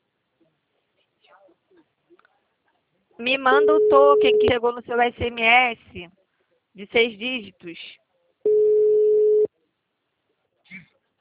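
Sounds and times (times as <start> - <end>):
speech: 3.2 - 6.2, 6.8 - 8.6
telephone busy tone beep after a dropped phone call: 3.6 - 4.6, 8.5 - 9.5.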